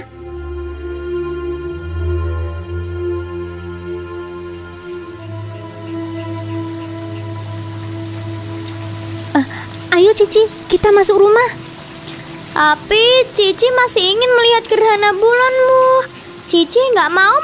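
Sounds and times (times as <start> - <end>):
soft sustained musical drone humming: 0.0 - 17.4
steady rain pattering on a surface: 3.5 - 17.4
speech: 9.4 - 11.6, 12.6 - 17.4.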